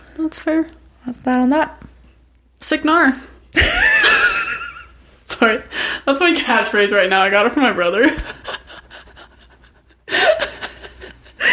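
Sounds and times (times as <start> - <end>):
speech: 0.2 - 1.9, 2.7 - 3.9, 5.4 - 8.4
person wheezing laugh-like exhale: 10.1 - 11.5.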